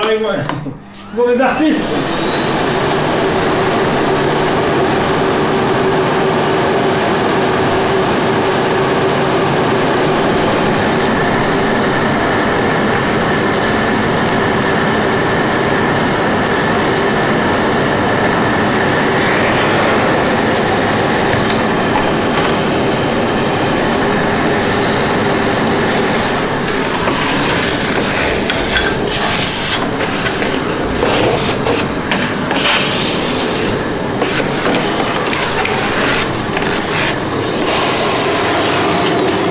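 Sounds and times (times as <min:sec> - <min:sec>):
speech: 0:00.1 - 0:02.8
vacuum cleaner running: 0:00.8 - 0:39.4.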